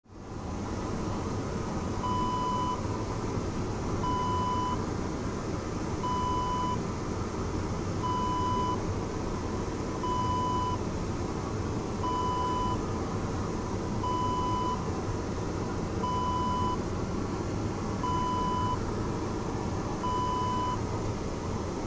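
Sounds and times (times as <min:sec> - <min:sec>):
airplane toilet ambience: 0:00.1 - 0:21.8.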